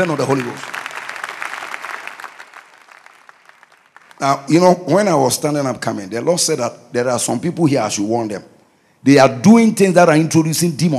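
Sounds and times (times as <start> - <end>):
speech: 0.0 - 0.8, 4.2 - 10.9
room full of people clapping: 0.0 - 4.5.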